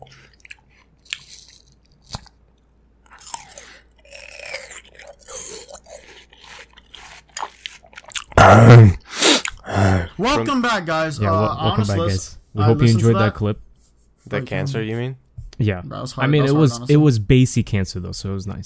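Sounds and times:
someone chewing watermelon for ASMR with wet crunching: 0:00.1 - 0:02.4, 0:03.1 - 0:09.7
speech: 0:08.5 - 0:09.0, 0:10.2 - 0:13.7, 0:14.3 - 0:18.6.

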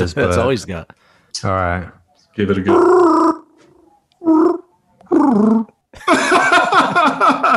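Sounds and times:
speech: 0:00.0 - 0:03.4
person imitating a Wookiee growl: 0:02.7 - 0:03.5, 0:04.2 - 0:05.7
laughter: 0:06.0 - 0:07.5.

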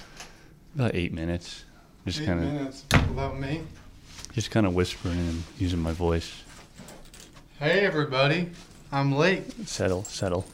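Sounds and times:
speech: 0:00.7 - 0:07.0, 0:07.6 - 0:10.5
door swinging shut with a firm thud: 0:02.9 - 0:03.5.

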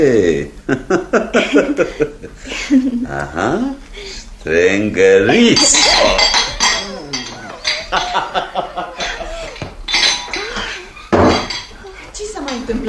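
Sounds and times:
speech: 0:00.0 - 0:03.8, 0:04.4 - 0:06.5
crockery clattering: 0:00.0 - 0:12.8
indistinct voices murmuring: 0:00.0 - 0:12.8
laughter: 0:00.5 - 0:03.8, 0:05.2 - 0:12.3
small porcelain saucer breaking: 0:05.3 - 0:11.8.

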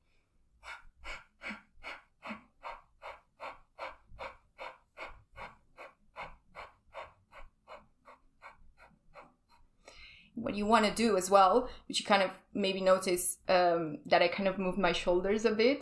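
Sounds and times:
breathing exercise with quick forceful exhales from the stomach: 0:00.0 - 0:10.4
speech: 0:10.4 - 0:15.8.

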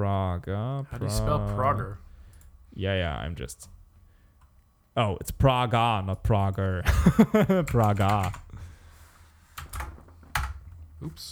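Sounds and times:
low steady hum: 0:00.0 - 0:11.2
speech: 0:00.4 - 0:02.1, 0:02.7 - 0:03.8, 0:05.0 - 0:08.4, 0:11.0 - 0:11.2
laughter: 0:06.8 - 0:07.9
computer keyboard typing: 0:07.5 - 0:08.5, 0:09.6 - 0:10.8.

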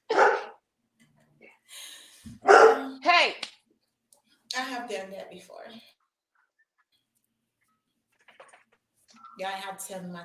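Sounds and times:
dog barking excitedly: 0:00.1 - 0:00.6, 0:02.4 - 0:03.0
speech: 0:04.9 - 0:06.0, 0:09.4 - 0:10.2.

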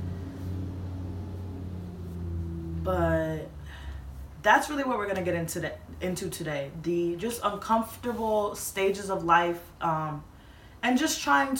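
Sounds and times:
loud bus engine rumbling: 0:00.0 - 0:06.6
speech: 0:02.8 - 0:03.6, 0:04.4 - 0:11.5.

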